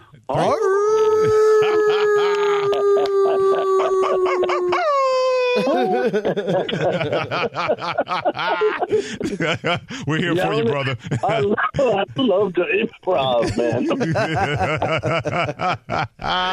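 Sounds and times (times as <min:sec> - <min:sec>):
speech: 0:00.2 - 0:00.6, 0:06.1 - 0:16.5
caller imitating a wolf howl: 0:00.3 - 0:06.2
person snickering and chuckling: 0:00.4 - 0:12.0, 0:13.4 - 0:16.5.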